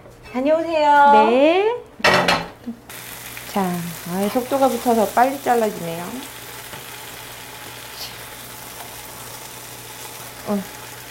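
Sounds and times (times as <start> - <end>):
speech: 0.3 - 2.9, 3.6 - 6.4, 10.5 - 10.8
meat sizzling while grilling: 2.9 - 11.0.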